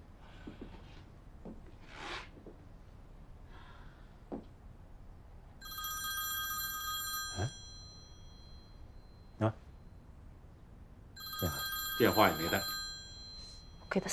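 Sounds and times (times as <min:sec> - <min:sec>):
mobile phone electronic ringtone: 0:05.6 - 0:09.0, 0:11.2 - 0:14.0.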